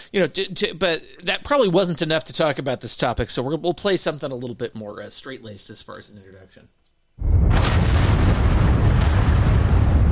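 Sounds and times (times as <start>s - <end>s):
speech: 0.1s - 7.9s
explosion on an oil drilling platform in the Gulf of Mexico: 7.2s - 10.1s
sharp crackles: 7.2s - 10.1s.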